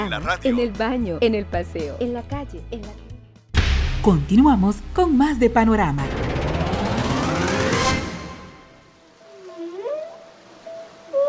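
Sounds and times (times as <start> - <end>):
speech: 0.1 - 3.1, 4.0 - 6.5
dense noisy wash: 4.1 - 8.9
long tonal whale calls, moans and whistles: 9.3 - 11.2.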